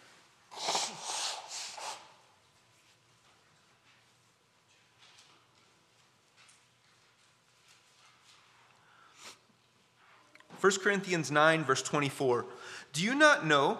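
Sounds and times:
sharp snort: 0.5s - 2.1s
person blowing nose: 0.5s - 2.2s, 9.1s - 9.4s
sniffs: 0.5s - 2.2s, 8.8s - 9.5s
rustling: 2.4s - 10.4s
speech: 10.6s - 13.7s.

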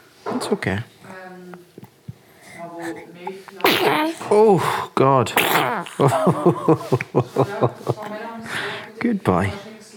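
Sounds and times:
speech: 0.4s - 0.9s, 2.8s - 9.7s
soft infant vocal sounds: 2.3s - 6.1s
baby hiccups: 2.8s - 6.1s.

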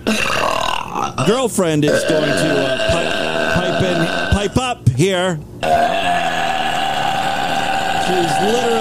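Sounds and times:
woman burping: 0.0s - 1.2s, 1.9s - 4.5s, 5.6s - 8.7s
speech: 0.1s - 0.4s, 1.2s - 2.9s, 3.8s - 6.4s, 8.1s - 8.7s.

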